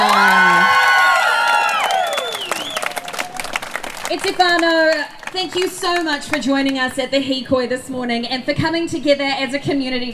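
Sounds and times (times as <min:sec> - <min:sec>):
crowd cheering with high whoops: 0:00.0 - 0:06.4
scattered clapping: 0:00.0 - 0:06.9
speech: 0:04.2 - 0:10.1.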